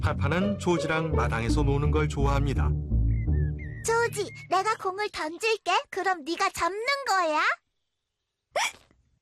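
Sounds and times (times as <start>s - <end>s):
speech: 0.1s - 2.9s, 4.1s - 7.6s, 8.6s - 8.8s
hiccup during a game of catch in a yard: 8.6s - 8.9s.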